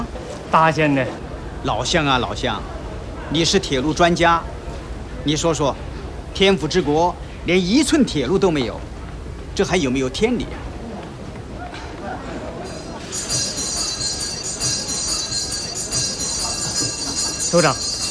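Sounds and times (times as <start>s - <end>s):
voices speaking: 0.0s - 18.0s
train idling at a station: 1.0s - 18.0s
laughter: 11.5s - 18.0s.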